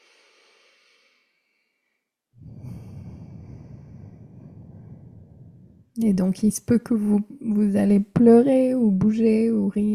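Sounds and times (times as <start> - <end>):
person breathing in and out through the nose during a guided breathing exercise: 0.0 - 5.9
speech: 6.0 - 9.9.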